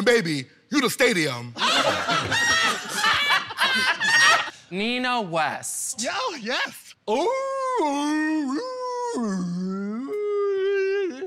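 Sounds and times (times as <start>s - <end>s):
speech: 0.0s - 2.4s, 4.7s - 9.7s
laughter: 1.6s - 4.5s
voice imitating a whale call: 7.3s - 11.2s.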